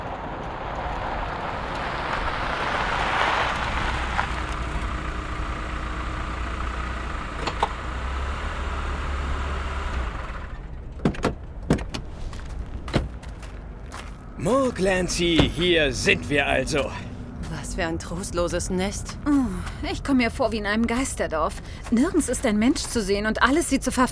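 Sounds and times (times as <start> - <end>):
car engine and road rumble while parking in front of a village inn: 0.0 - 24.0
car doors opening as people get out: 7.3 - 7.8, 9.8 - 13.5, 15.2 - 15.9
speech: 14.4 - 17.0, 17.8 - 24.0.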